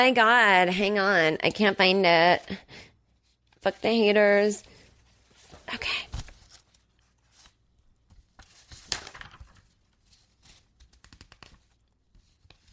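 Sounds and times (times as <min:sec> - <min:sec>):
speech: 0:00.0 - 0:02.9, 0:03.6 - 0:04.7, 0:05.7 - 0:06.2
paper crinkling and rustling while being handled: 0:04.6 - 0:12.7.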